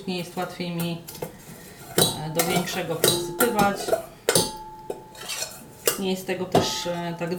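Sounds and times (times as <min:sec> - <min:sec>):
speech: 0:00.0 - 0:01.2, 0:02.2 - 0:04.1, 0:06.0 - 0:07.3
spoon clinking and scraping against a metal pot: 0:01.6 - 0:07.0.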